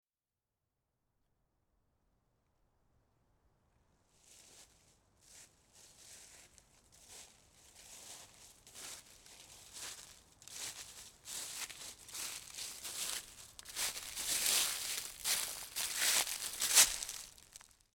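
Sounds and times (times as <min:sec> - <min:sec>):
footsteps walking in a forest: 0:04.2 - 0:17.9.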